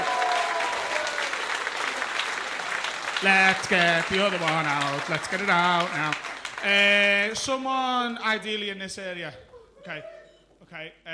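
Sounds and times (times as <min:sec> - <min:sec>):
audience applause at a live show: 0:00.0 - 0:07.6
speech: 0:03.2 - 0:11.1.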